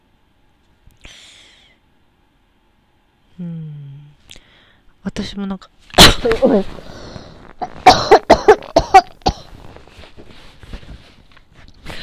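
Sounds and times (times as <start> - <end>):
speech: 3.4 - 3.6, 5.1 - 6.9
person coughing from throat trouble: 6.0 - 6.7, 7.6 - 9.6.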